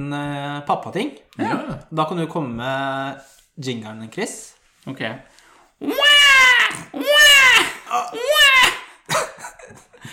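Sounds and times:
speech: 0.0s - 6.1s
child wailing in a jingle: 5.8s - 8.9s.

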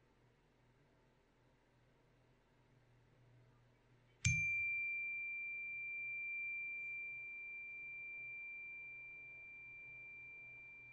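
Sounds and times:
single bright meditation chime ringing: 4.3s - 10.9s.

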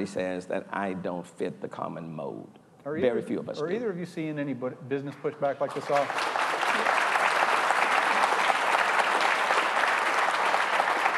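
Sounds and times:
speech: 0.0s - 6.4s
audience applause at live recording: 5.7s - 11.1s.

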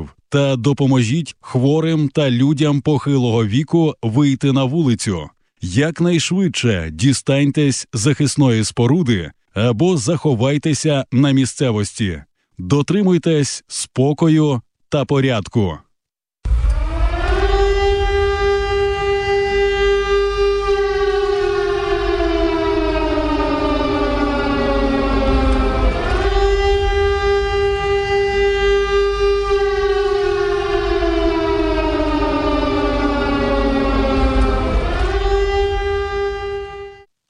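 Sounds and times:
speech: 0.0s - 15.8s
air raid siren wailing: 16.4s - 37.1s.

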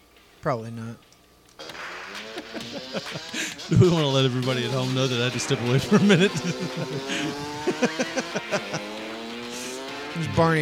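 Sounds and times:
speech: 0.4s - 1.1s, 2.5s - 9.1s, 10.1s - 10.6s
laughter: 2.1s - 9.9s
dirt bike engine buzzing past on a street: 5.5s - 10.2s.

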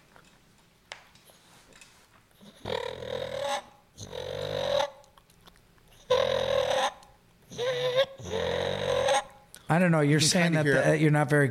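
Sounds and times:
turkey purr made on a mouth call by rolling the tongue: 2.5s - 5.0s, 6.1s - 9.3s
speech: 9.7s - 11.4s.

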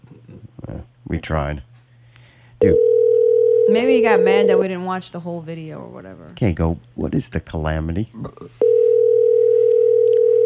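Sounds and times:
speech: 1.1s - 1.7s, 2.6s - 2.9s, 3.7s - 8.8s
telephone ringing tone: 2.6s - 4.7s, 8.6s - 10.4s.

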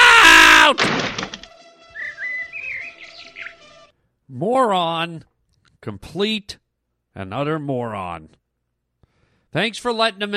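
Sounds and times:
bird wings flapping: 0.8s - 1.6s
bird chirping and tweeting: 1.9s - 3.8s
speech: 4.3s - 6.6s, 7.2s - 8.4s, 9.5s - 10.3s.

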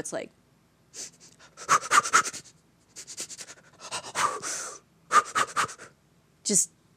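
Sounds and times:
speech: 0.0s - 1.8s, 6.5s - 6.7s
rapid forceful breathing exercise: 1.0s - 6.0s.

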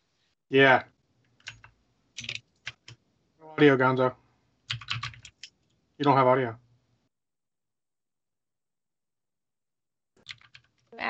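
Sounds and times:
speech: 0.5s - 0.9s, 3.6s - 4.2s, 6.0s - 6.6s
clattering computer keyboard typing: 1.4s - 3.0s, 4.7s - 5.6s, 10.2s - 10.8s.

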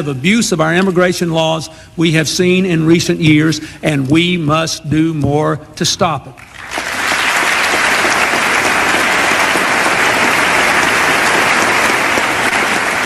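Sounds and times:
speech: 0.0s - 6.9s
large crowd applauding in a standing ovation: 6.4s - 13.0s.

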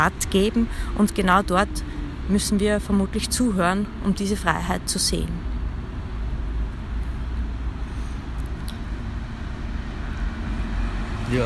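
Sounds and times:
speech: 0.0s - 5.5s, 11.3s - 11.4s
street traffic flowing at an intersection: 0.0s - 11.4s.

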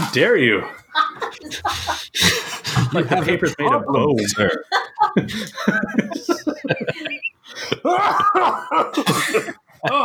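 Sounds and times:
voiced laugh-like vocal sounds: 0.0s - 10.0s
speech: 0.1s - 10.0s
rough throaty coughs: 8.0s - 9.6s.

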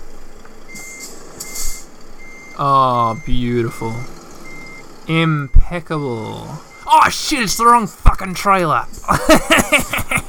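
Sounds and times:
truck engine rumble in a driving video game: 0.0s - 10.2s
truck reversing beeps in a driving video game: 0.7s - 7.1s
speech: 2.6s - 4.2s, 5.1s - 10.2s
laughter: 9.1s - 10.2s.

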